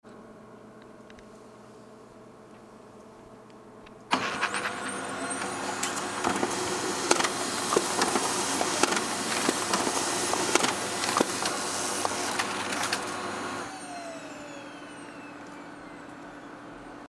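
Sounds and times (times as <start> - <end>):
printer printing: 4.1 - 17.0.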